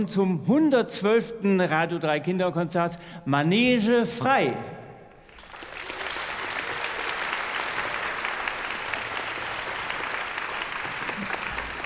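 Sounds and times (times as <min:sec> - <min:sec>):
speech: 0:00.0 - 0:04.8
large audience applause at a children's concert: 0:05.2 - 0:11.8.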